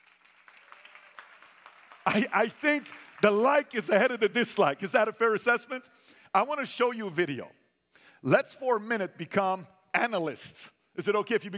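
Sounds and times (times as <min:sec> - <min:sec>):
crowd clapping: 0:00.0 - 0:04.2
speech: 0:02.1 - 0:07.6, 0:08.2 - 0:11.5.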